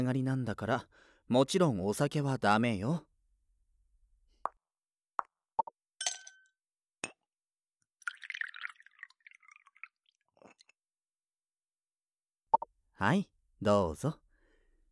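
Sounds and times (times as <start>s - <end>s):
speech: 0.0s - 3.1s, 13.0s - 14.2s
plops and clinks of a sweet non-alcoholic cocktail being mixed: 5.6s - 7.2s
short splashing pour of a warm sweet non-alcoholic cocktail: 8.0s - 10.8s.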